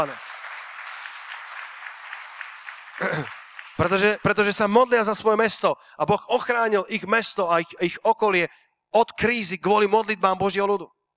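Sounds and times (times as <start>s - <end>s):
speech: 0.0s - 0.2s, 3.0s - 11.0s
audience clapping: 0.0s - 5.1s.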